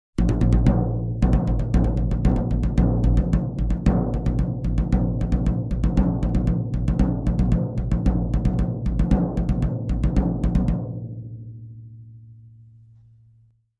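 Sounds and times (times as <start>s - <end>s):
tom drums rhythm: 0.2s - 11.1s.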